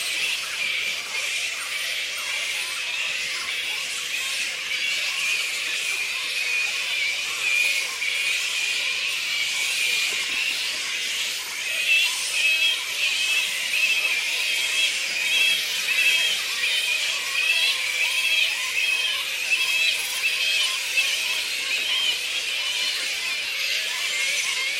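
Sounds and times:
black flying fox Pteropus alecto colony squeaking and chattering: 0:00.0 - 0:24.7.

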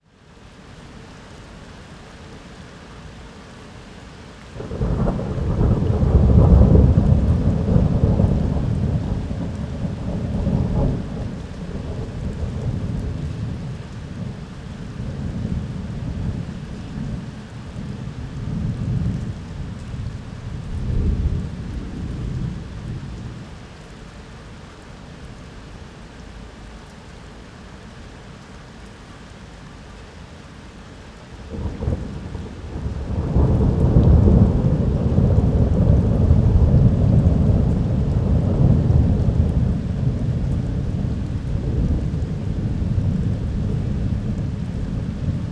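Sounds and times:
heavy rain: 0:00.0 - 0:45.5
loud thunder: 0:04.6 - 0:14.3, 0:31.5 - 0:45.5.

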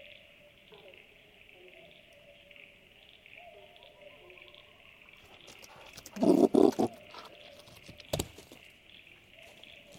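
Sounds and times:
steady insect-like hum: 0:00.0 - 0:09.9
brush-tailed possums grunting in the woods: 0:05.2 - 0:07.5.

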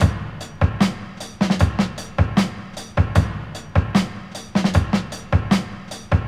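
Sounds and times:
drum loop at a slow tempo: 0:00.0 - 0:06.2.

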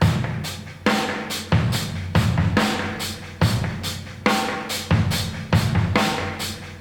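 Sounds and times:
drum loop at 71 bpm in D sharp: 0:00.0 - 0:06.7.

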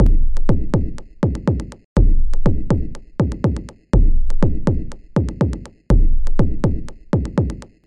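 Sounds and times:
clicky and clear FM synth percussion kick loop: 0:00.0 - 0:07.8.

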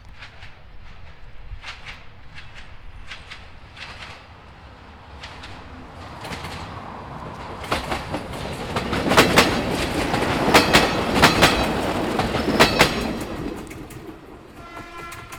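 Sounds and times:
electric train close up in the mountains: 0:00.0 - 0:15.3
electric train horn: 0:14.5 - 0:15.3.

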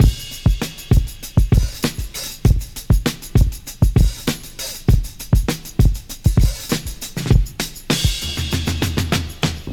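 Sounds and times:
99 bpm breakbeat drum loop in G sharp: 0:00.0 - 0:09.7.

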